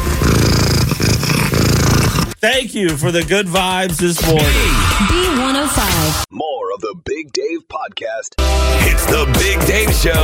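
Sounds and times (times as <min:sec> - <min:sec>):
cat purring loudly: 0:00.0 - 0:02.4
speech: 0:02.4 - 0:10.2.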